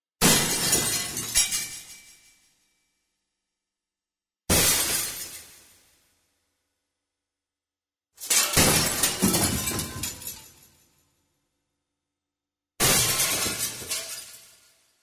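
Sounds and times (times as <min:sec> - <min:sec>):
glass breaking: 0:00.2 - 0:02.2, 0:04.5 - 0:05.7, 0:08.2 - 0:10.8, 0:12.8 - 0:14.8.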